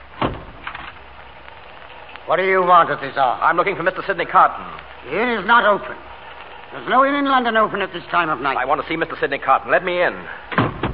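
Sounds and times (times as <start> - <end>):
door creaking open: 0.2 - 1.0, 10.5 - 10.9
speech: 2.3 - 6.1, 6.7 - 10.5
door latch clunk: 10.5 - 10.9.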